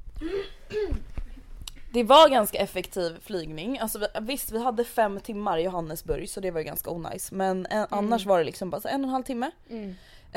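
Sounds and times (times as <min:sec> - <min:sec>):
person coughing: 0:00.2 - 0:01.0
speech: 0:02.0 - 0:10.3.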